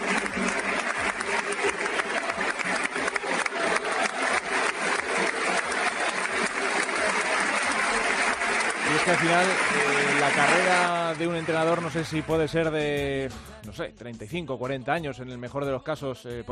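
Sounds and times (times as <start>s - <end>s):
large crowd applauding in an indoor sports arena: 0.0s - 12.6s
speech: 9.2s - 16.5s.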